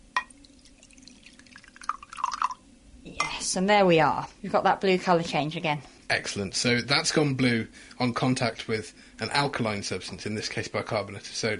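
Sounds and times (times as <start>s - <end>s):
glass clinking: 0.2s - 0.4s, 1.0s - 2.6s
liquid pouring into a glass: 0.2s - 2.7s
speech: 3.5s - 11.5s.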